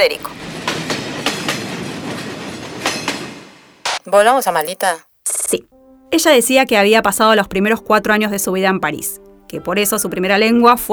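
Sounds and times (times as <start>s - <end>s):
speech: 0.0s - 0.5s, 4.0s - 10.9s
train rumbling along with a rushing roar: 0.0s - 4.7s
train wheels striking rail joints in clickety-clack beats: 0.1s - 3.8s.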